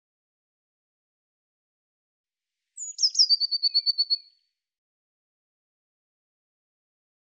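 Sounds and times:
Eurasian blue tit giving high bright notes: 0:02.8 - 0:04.3.

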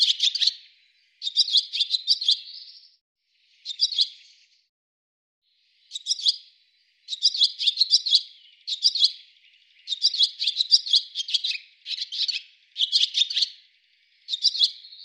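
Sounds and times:
bird chattering: 0:00.0 - 0:00.6, 0:01.2 - 0:02.7, 0:05.9 - 0:06.4, 0:07.1 - 0:13.6, 0:14.3 - 0:15.0.

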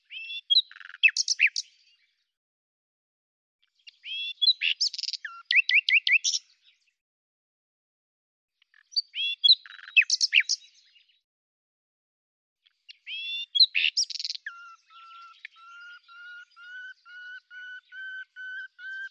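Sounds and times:
common nightingale singing: 0:00.0 - 0:01.8, 0:03.9 - 0:06.5, 0:08.7 - 0:11.0, 0:12.9 - 0:19.0.

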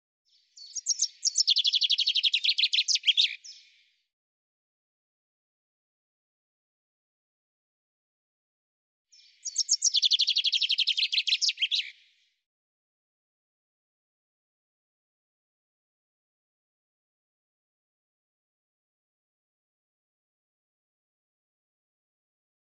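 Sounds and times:
common chaffinch song: 0:00.3 - 0:03.9, 0:09.1 - 0:12.2.

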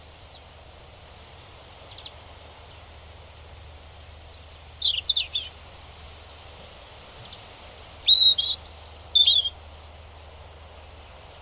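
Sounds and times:
faint background hiss: 0:00.0 - 0:11.3
European robin song: 0:04.0 - 0:05.5, 0:07.6 - 0:09.6.

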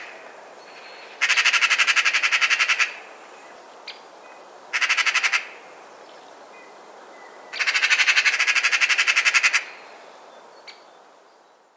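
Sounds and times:
bird pulsed rattle call: 0:00.0 - 0:03.0, 0:04.7 - 0:05.6, 0:07.5 - 0:09.8.

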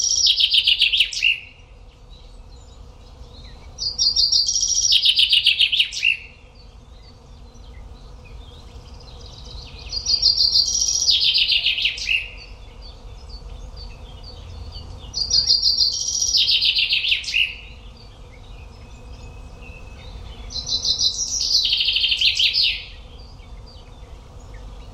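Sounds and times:
common chaffinch song: 0:00.0 - 0:24.9.

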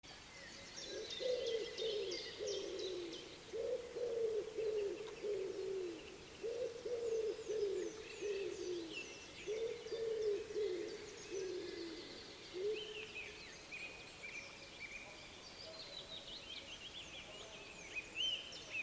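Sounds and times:
songbird giving high quick calls: 0:00.1 - 0:18.8
wood pigeon cooing: 0:00.9 - 0:13.0.

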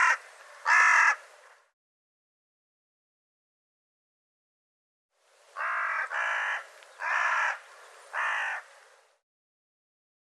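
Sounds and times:
bird calling with a harsh raspy caw: 0:00.0 - 0:01.2, 0:05.6 - 0:08.7.

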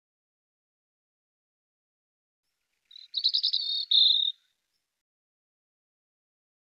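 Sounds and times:
European robin song with buzzy trill: 0:02.9 - 0:04.3.

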